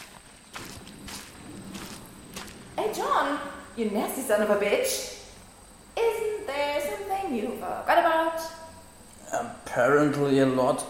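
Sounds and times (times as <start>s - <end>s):
footsteps scuffing at walking pace: 0.0s - 2.8s
faint hiss: 0.0s - 10.8s
speech: 2.8s - 5.2s, 7.3s - 8.5s, 9.8s - 10.8s.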